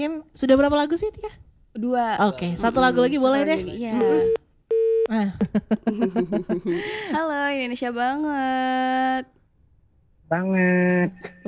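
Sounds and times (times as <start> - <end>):
speech: 0.0 - 4.4, 5.1 - 9.4, 10.3 - 11.4
laughter: 2.2 - 4.4, 5.1 - 7.6, 11.0 - 11.4
phone line tone after a dropped call: 2.9 - 5.1.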